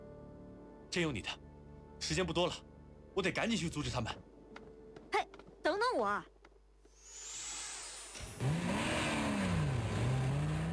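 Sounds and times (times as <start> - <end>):
speech: 0.9 - 1.4, 2.0 - 4.3, 6.0 - 6.3
jeep engine revving while speeding out of a parking lot: 8.4 - 10.7.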